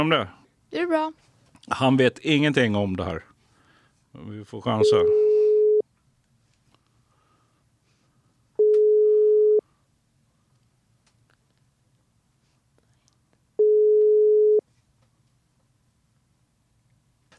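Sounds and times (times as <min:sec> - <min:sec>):
speech: 0:00.0 - 0:03.3, 0:04.2 - 0:05.2
faint low hum: 0:01.5 - 0:17.3
telephone ringback tone while a call is placed: 0:04.8 - 0:05.8, 0:08.6 - 0:09.6, 0:13.6 - 0:14.6.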